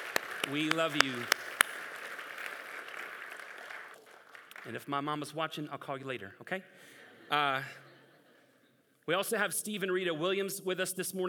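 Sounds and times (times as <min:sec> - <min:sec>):
congregation applauding mothers during a church service: 0:00.0 - 0:05.1
speech: 0:00.5 - 0:01.4, 0:04.6 - 0:07.8, 0:09.1 - 0:11.2.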